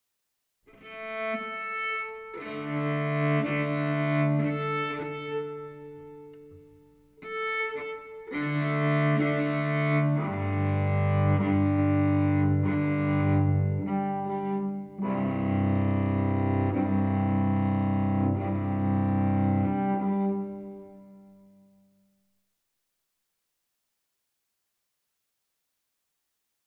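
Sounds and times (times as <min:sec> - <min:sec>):
cello tuning: 0:00.7 - 0:21.7.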